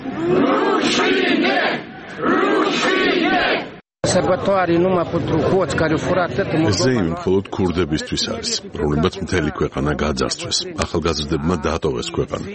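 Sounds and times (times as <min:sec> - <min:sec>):
protest crowd in Moldova shouting and chanting over a corruption grievance: 0:00.0 - 0:09.8
speech: 0:00.2 - 0:12.5.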